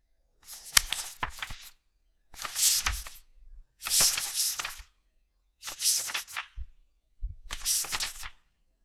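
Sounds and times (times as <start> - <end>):
paper page turning: 0.5 - 1.7, 2.4 - 3.2, 3.8 - 4.9, 5.6 - 6.6, 7.5 - 8.4.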